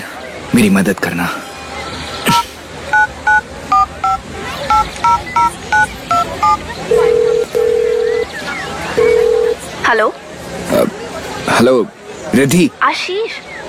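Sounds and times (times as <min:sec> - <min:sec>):
speech: 0:00.6 - 0:01.5, 0:09.9 - 0:10.2, 0:10.8 - 0:13.5
dual-pitch phone keypad dialing beeps: 0:02.3 - 0:08.2
steady phone line ringing tones: 0:02.9 - 0:08.3, 0:09.0 - 0:09.6.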